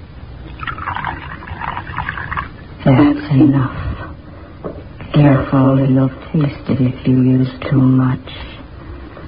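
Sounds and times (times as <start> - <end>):
liquid poured from bottle into cocoa in a cup: 0.4 - 3.2
speech: 2.9 - 3.9, 5.2 - 8.5.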